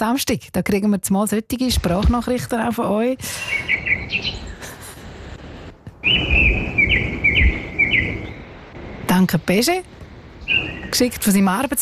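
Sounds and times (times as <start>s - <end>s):
speech: 0.0s - 4.5s, 6.0s - 7.1s, 9.1s - 11.8s
soft rumble: 1.6s - 11.8s
birds singing and chirping outdoors: 3.3s - 5.4s, 6.0s - 8.8s, 10.2s - 11.6s.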